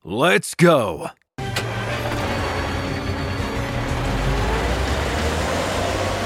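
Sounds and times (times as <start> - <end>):
speech: 0.1 - 1.2
truck engine rumble driving through the streets: 1.4 - 6.2
road noise: 1.6 - 6.2.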